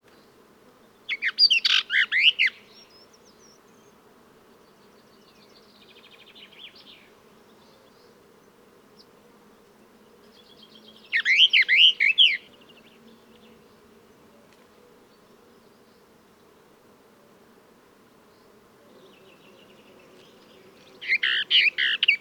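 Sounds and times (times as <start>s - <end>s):
Sylvia hortensis song: 0.1s - 14.3s, 18.3s - 22.1s.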